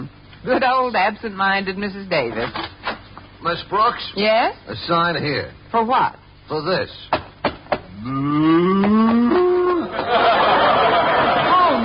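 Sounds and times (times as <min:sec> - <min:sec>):
speech: 0:00.4 - 0:02.7, 0:03.4 - 0:07.2, 0:08.0 - 0:09.0
cow mooing: 0:08.0 - 0:09.8
laughter: 0:09.2 - 0:11.8.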